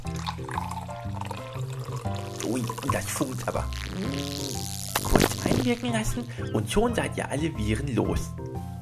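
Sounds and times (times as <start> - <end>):
liquid pouring from a bottle with gurgling and glugging: 0.0 - 5.8
speech: 2.5 - 8.7.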